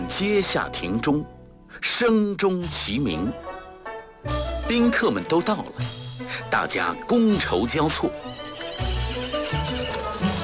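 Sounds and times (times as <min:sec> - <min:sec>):
speech: 0:00.1 - 0:03.5, 0:04.2 - 0:08.4
horse hooves clip-clopping outside a door: 0:08.1 - 0:10.4.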